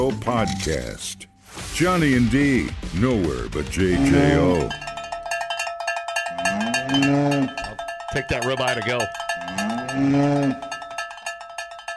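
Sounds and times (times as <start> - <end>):
speech: 0.0 - 4.8, 6.9 - 10.7
cow mooing: 3.8 - 4.9, 6.3 - 7.8, 9.3 - 10.8
cowbell clanking: 3.8 - 11.9.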